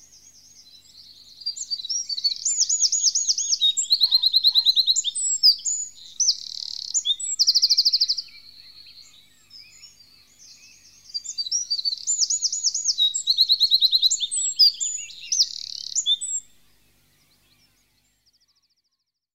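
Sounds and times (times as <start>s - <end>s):
Eurasian wren singing: 0.0s - 18.2s.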